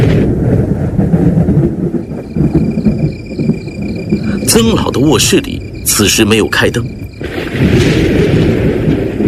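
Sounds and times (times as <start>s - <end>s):
deep rolling thunder on a muggy night: 0.0s - 9.2s
crickets chirping: 1.9s - 8.5s
speech: 4.6s - 7.0s.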